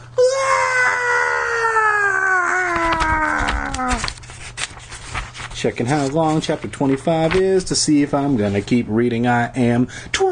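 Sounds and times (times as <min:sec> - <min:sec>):
blood-curdling scream of horror: 0:00.0 - 0:04.1
speech: 0:05.6 - 0:10.3.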